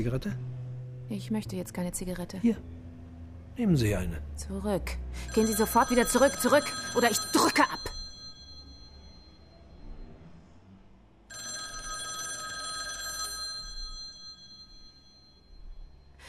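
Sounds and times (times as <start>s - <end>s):
speech: 0.0s - 0.5s, 1.1s - 2.8s, 3.6s - 7.9s
telephone at a police precinct ringing with a trilling bell: 5.2s - 10.0s, 11.3s - 16.2s.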